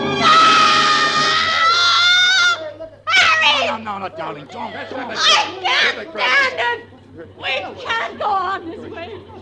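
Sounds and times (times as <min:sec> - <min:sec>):
woman shrieking: 0:00.2 - 0:03.7
speech: 0:04.1 - 0:09.4
laughter: 0:04.3 - 0:09.4.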